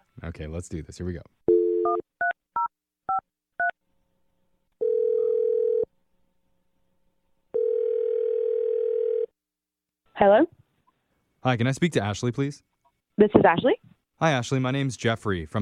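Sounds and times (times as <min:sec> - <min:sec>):
speech: 0:00.2 - 0:02.0, 0:10.2 - 0:10.6, 0:11.4 - 0:15.6
long steady telephone ringing tones: 0:04.8 - 0:05.9, 0:07.6 - 0:09.3.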